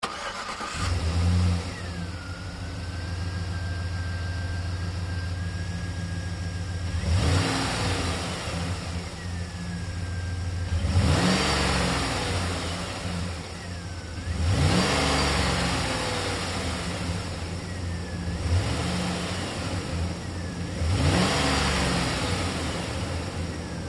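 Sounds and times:
GMC Savana truck engine starting revving and shutting off: 0.0s - 23.8s.

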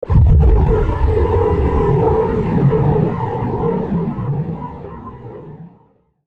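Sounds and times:
science fiction impact hit: 0.1s - 3.6s.

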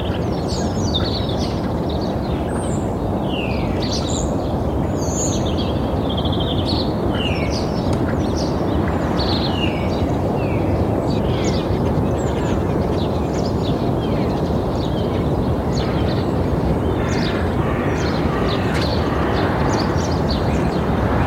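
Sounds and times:
several birds chirping and twittering in suburban morning: 0.0s - 21.2s
heavy constant roar of suburban road traffic: 16.2s - 21.2s
cars passing in heavy traffic: 17.9s - 21.2s.

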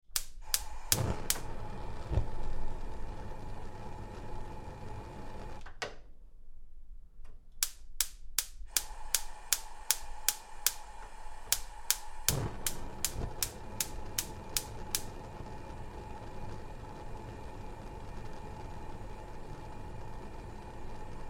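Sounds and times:
gas hob igniter sparking: 0.0s - 5.7s, 7.6s - 21.2s.

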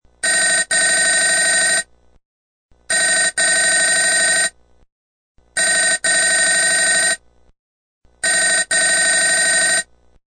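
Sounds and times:
telephone ringing: 0.2s - 1.9s, 2.9s - 4.6s, 5.6s - 7.2s, 8.2s - 9.9s.

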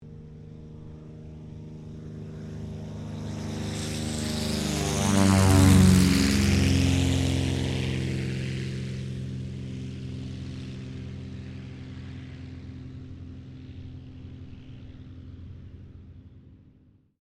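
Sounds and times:
CT4A military trainer aircraft taking off: 0.0s - 17.0s.

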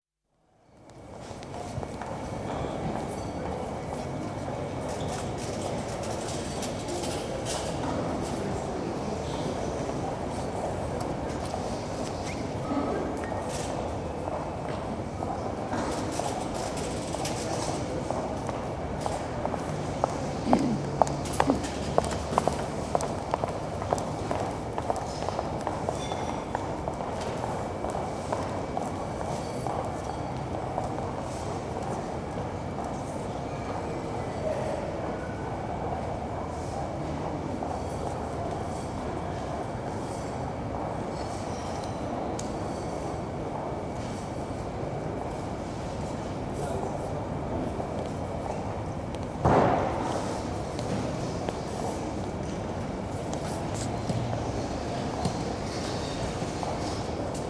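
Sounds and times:
airport terminal concourse ambience in arrivals and departures: 0.3s - 57.4s.

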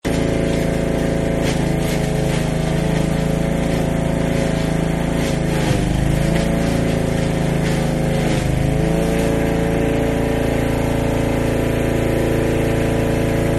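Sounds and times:
lawnmower wood chipper running: 0.0s - 13.5s.

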